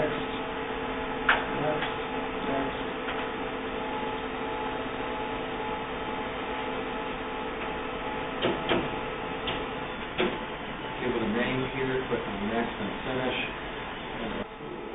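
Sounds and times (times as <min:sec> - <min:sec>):
printer humming and whirring while printing a test page: 0:00.0 - 0:14.9
printer clicks and clunks as the page feeds through: 0:08.4 - 0:10.4.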